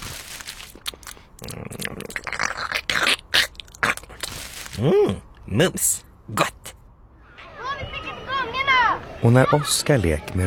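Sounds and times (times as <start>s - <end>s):
crunching and chewing on mixed screws: 0.0s - 4.9s
speech: 4.8s - 6.6s, 9.2s - 10.4s.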